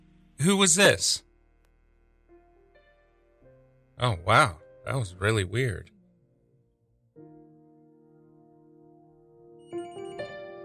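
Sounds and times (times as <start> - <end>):
speech: 0.4 - 1.3, 4.0 - 6.0
telephone ringing with an electronic ringtone: 9.6 - 10.6.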